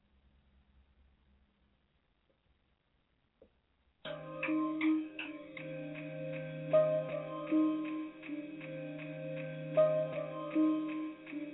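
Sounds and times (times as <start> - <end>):
clock ticking: 4.1 - 11.5
sustained musical tones: 4.1 - 11.5.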